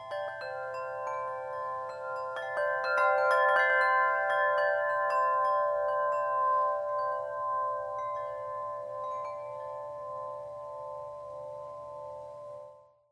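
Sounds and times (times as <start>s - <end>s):
bells: 0.0s - 13.0s
wind chimes: 0.0s - 13.0s.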